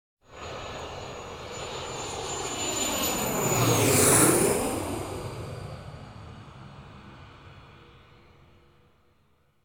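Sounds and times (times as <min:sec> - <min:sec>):
airplane flying low in a right turn at an airport: 0:00.2 - 0:09.5.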